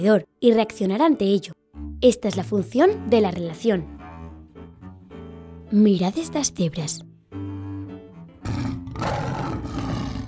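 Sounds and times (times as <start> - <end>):
speech: 0.0 - 4.0, 5.7 - 7.5
lion roaring: 8.4 - 10.2.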